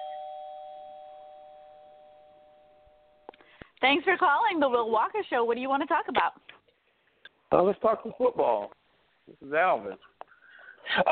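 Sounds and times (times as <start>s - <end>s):
electronic doorbell chime: 0.0s - 3.2s
speech: 3.8s - 6.5s, 7.5s - 10.1s, 10.9s - 11.1s.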